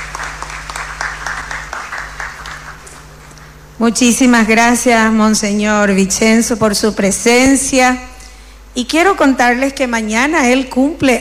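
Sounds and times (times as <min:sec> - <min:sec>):
crowd applauding congratulating people on their birthdays: 0:00.0 - 0:03.5
low constant hum: 0:00.0 - 0:11.1
speech: 0:03.8 - 0:08.1, 0:08.8 - 0:11.1.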